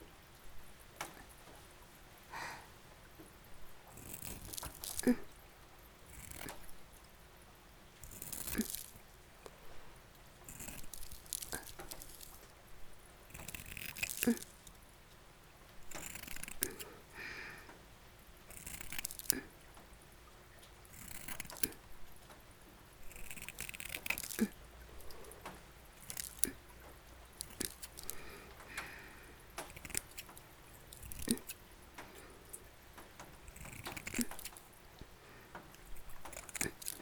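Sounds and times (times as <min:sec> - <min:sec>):
soft rustling and crunching: 0:00.0 - 0:07.2, 0:07.8 - 0:17.8, 0:18.4 - 0:36.9
scissors cutting around something: 0:04.0 - 0:05.3, 0:06.1 - 0:06.7, 0:08.0 - 0:09.0, 0:10.5 - 0:12.5, 0:13.3 - 0:14.7, 0:15.9 - 0:16.9, 0:18.5 - 0:19.5, 0:20.9 - 0:21.9, 0:23.0 - 0:26.6, 0:27.3 - 0:32.2, 0:33.0 - 0:36.9.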